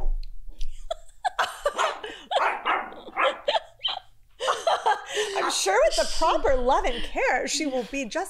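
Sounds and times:
laughter: 0.8s - 8.1s
grumpy female dog barking: 1.7s - 3.6s, 5.4s - 5.7s
speech: 5.6s - 8.2s.

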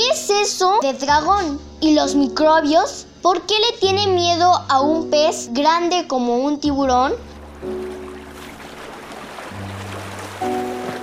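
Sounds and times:
speech: 0.3s - 7.8s
ocean surf: 7.5s - 11.0s.

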